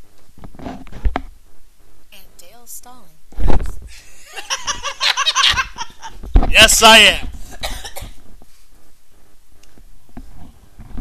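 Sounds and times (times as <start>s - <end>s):
laughter: 3.9s - 6.8s
speech: 6.6s - 7.3s
person coughing: 7.5s - 8.2s.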